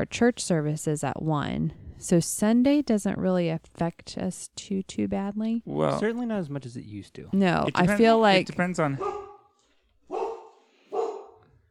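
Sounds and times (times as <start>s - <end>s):
speech: 0.0s - 9.2s
pet dog barking at home: 9.0s - 9.5s, 10.1s - 11.5s.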